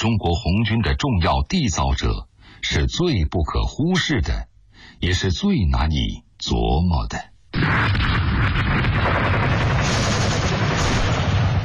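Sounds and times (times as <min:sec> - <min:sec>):
speech: 0:00.0 - 0:10.1
artillery in battle: 0:07.6 - 0:11.6
rapid bursts of shots: 0:07.6 - 0:11.6
rumbling gunfire in battle: 0:07.6 - 0:11.6.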